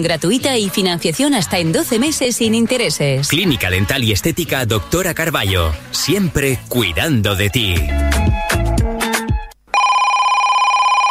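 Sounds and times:
speech: 0.0s - 8.4s
music: 0.0s - 9.6s
telephone ringing with a steady electronic trill: 9.7s - 11.0s.

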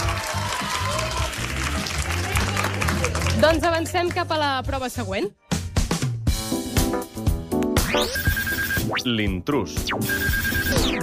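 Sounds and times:
audience applause and cheering for contestants: 0.0s - 4.0s
music bed: 0.0s - 11.0s
speech: 3.4s - 5.4s, 8.0s - 8.3s, 8.9s - 11.0s.

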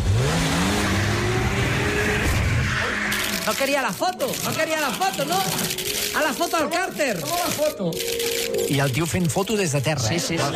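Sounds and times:
car engine revving and accelerating: 0.0s - 3.3s
speech: 3.5s - 10.5s.

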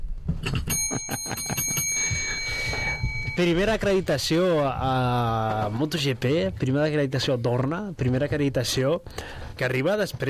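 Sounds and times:
small bell being rung in studio: 0.7s - 4.5s
speech: 3.4s - 10.2s.

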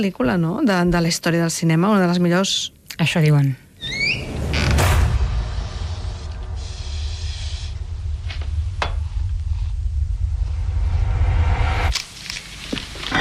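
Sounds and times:
speech: 0.0s - 4.0s
loud creak: 3.8s - 5.3s
low rumbling: 4.0s - 12.0s.

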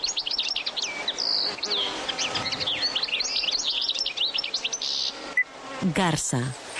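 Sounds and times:
European goldfinch singing a twittering song: 0.0s - 5.2s
speech: 5.8s - 6.6s.

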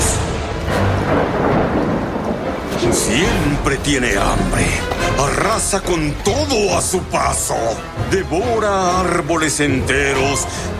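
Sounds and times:
thunder rumbling: 0.0s - 8.0s
speech: 2.9s - 10.7s.

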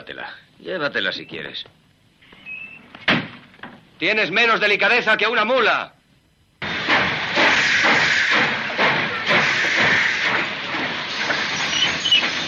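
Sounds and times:
speech: 0.0s - 1.8s, 4.0s - 6.0s
broad bursts: 6.6s - 12.4s
train hissing steam: 6.6s - 12.4s.

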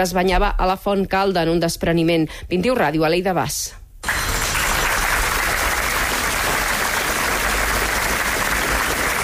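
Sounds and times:
speech: 0.0s - 3.8s
outdoor crowd applause: 4.0s - 9.2s.

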